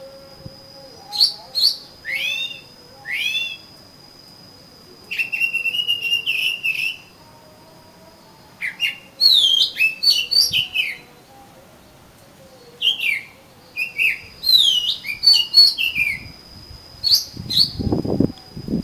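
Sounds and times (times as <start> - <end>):
steady high hum: 0.0 - 18.8
Oriental magpie-robin song: 0.8 - 3.7, 5.1 - 7.1, 8.6 - 11.2, 12.5 - 16.4, 17.0 - 18.0.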